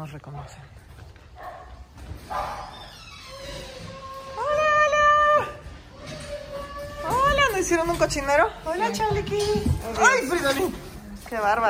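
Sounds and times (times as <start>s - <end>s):
speech: 0.0s - 2.7s, 7.6s - 11.6s
female dogs barking happily at returning owners: 1.4s - 3.0s
dog whining: 2.3s - 7.8s.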